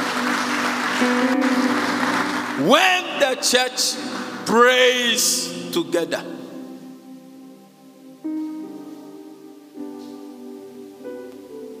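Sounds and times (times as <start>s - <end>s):
congregation clapping: 0.0s - 5.8s
speech: 2.6s - 6.4s.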